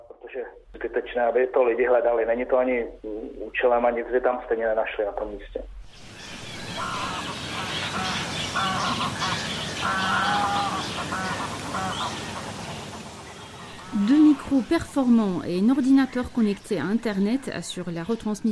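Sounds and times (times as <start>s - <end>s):
thin radio-like voice speaking: 0.0s - 5.7s
speech: 0.4s - 7.1s, 13.9s - 18.4s
several bird species calling near a pond in a protected forest area: 5.9s - 18.4s
waterfowl honking and quacking: 6.2s - 14.8s.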